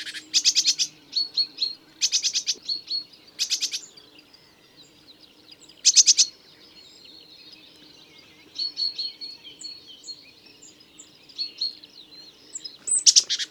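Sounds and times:
great tit harsh rattling calls: 0.0 - 3.9, 5.8 - 6.3, 12.7 - 13.5
great tit soft chatter: 0.0 - 13.5.

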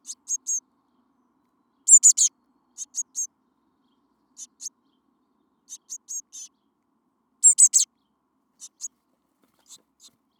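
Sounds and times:
Eurasian blue tit Cyanistes caeruleus giving high thin call notes: 0.0 - 0.6, 1.9 - 3.3, 4.4 - 4.7, 5.7 - 6.5, 7.4 - 7.9, 8.6 - 8.9.

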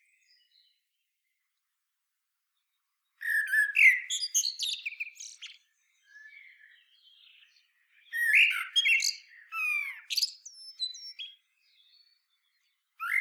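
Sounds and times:
common blackbird Turdus merula singing: 3.2 - 13.1.

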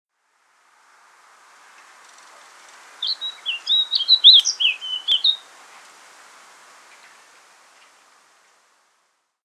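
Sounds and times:
faint background hiss: 0.0 - 9.4
Eurasian blackcap singing, Sylvia atricapilla: 3.0 - 5.4.

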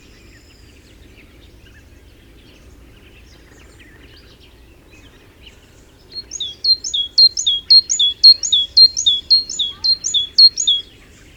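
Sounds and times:
Great tit repeating crisp high two-note phrases: 6.3 - 10.8.

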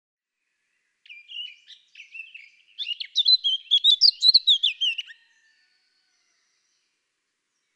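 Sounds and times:
Eurasian blackcap Sylvia atricapilla singing: 1.0 - 5.2.

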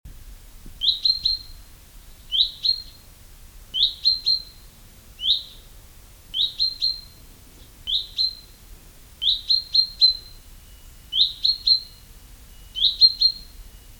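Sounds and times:
common chaffinch Fringilla coelebs calling: 0.8 - 1.5, 2.3 - 3.0, 3.8 - 4.6, 5.2 - 5.6, 6.4 - 7.2, 7.9 - 8.5, 9.2 - 10.3, 11.1 - 12.0, 12.7 - 13.5.

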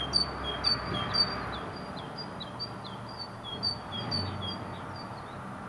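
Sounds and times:
great tit Parus major singing: 0.0 - 5.5.

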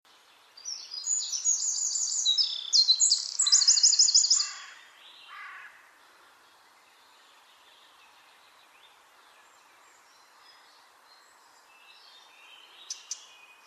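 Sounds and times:
faint bird chirps: 0.4 - 5.6, 6.4 - 13.6
Eurasian wren Troglodytes troglodytes singing: 0.5 - 5.5, 11.2 - 13.6.

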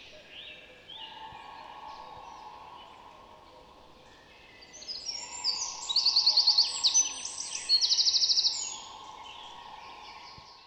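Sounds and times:
constant low drone: 0.5 - 10.6
Eurasian wren Troglodytes troglodytes singing high trills: 0.9 - 10.6.

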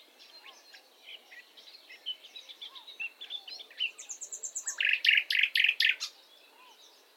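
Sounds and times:
common nightingale Luscinia megarhynchos song: 0.0 - 7.1.

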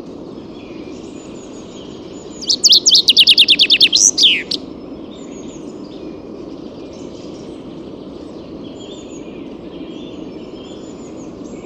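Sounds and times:
Common chaffinch Fringilla coelebs song fragment: 2.4 - 4.6.

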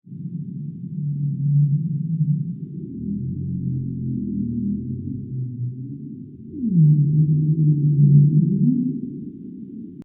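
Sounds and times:
bowhead whale vocalizing in the sea: 0.9 - 9.9.

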